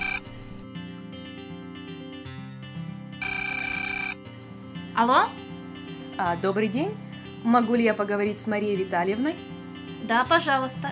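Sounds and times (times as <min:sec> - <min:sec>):
electronic telephone ringtone: 0:00.0 - 0:00.6, 0:03.2 - 0:04.2
speech: 0:05.0 - 0:05.4, 0:06.2 - 0:10.9.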